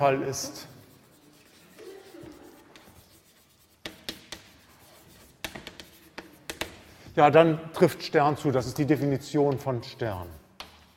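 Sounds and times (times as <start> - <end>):
speech: 0.0 - 0.7, 7.2 - 10.4
writing by hand: 0.7 - 6.9, 10.2 - 10.9.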